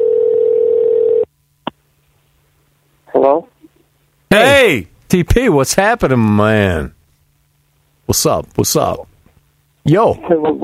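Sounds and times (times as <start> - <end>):
buzzing telephone ringback tone on an outgoing call: 0.0 - 1.3
speech: 4.7 - 7.0, 8.1 - 9.1, 9.8 - 10.6.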